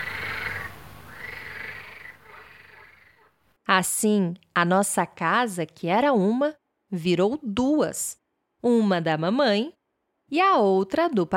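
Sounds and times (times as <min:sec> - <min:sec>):
frogs croaking in rasping calls: 0:00.0 - 0:03.4
speech: 0:03.7 - 0:11.3.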